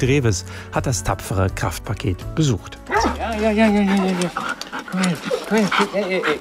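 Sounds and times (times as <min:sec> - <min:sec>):
speech: 0:00.0 - 0:06.3
excited female husky whining and yowling at an animal shelter in Korbach Germany: 0:02.8 - 0:06.0.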